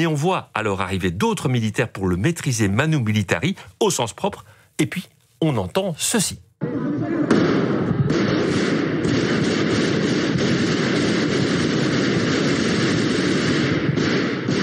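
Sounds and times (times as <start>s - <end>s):
speech: 0.0s - 7.0s
gunfire from soldiers storming a parliament chamber: 7.2s - 14.6s.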